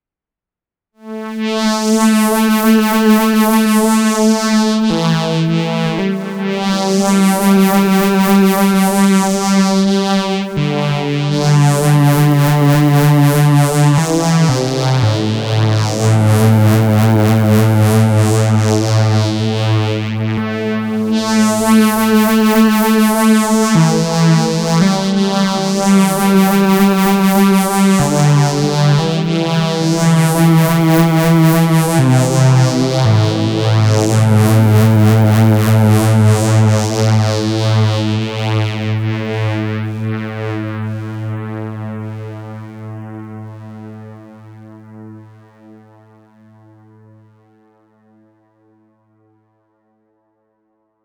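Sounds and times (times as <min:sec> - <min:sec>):
synthesizer chorus phaser pad with stereo chorus echo: 0:01.4 - 0:45.8.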